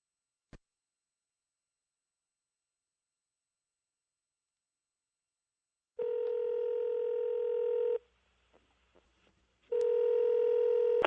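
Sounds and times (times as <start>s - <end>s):
long buzzing phone line rings through the receiver: 6.0s - 8.0s, 9.8s - 11.0s.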